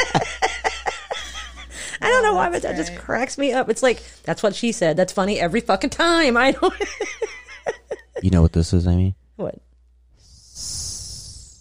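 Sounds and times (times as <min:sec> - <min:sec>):
laughter: 0:00.0 - 0:01.8, 0:06.4 - 0:08.5
speech: 0:02.2 - 0:07.4, 0:08.2 - 0:09.7
person doing a comedic snake impression with a sustained hiss: 0:10.2 - 0:11.5.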